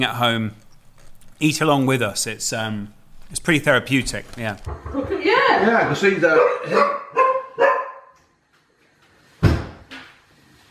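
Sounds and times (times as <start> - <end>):
speech: 0.0 - 0.6, 1.4 - 7.1
dog barking: 6.2 - 8.2.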